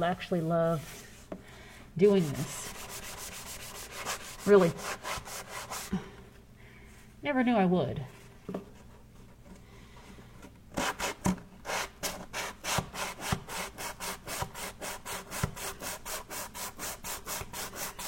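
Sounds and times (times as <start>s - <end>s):
speech: 0.0s - 1.1s, 2.0s - 3.0s, 4.4s - 5.1s, 7.2s - 8.7s
sanding block scrubbing back and forth across a surface: 2.0s - 5.9s, 11.7s - 18.0s.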